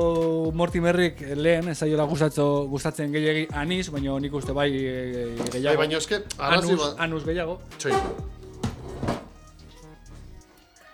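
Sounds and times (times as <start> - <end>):
speech: 0.0 - 8.4
door slamming shut: 7.8 - 9.3.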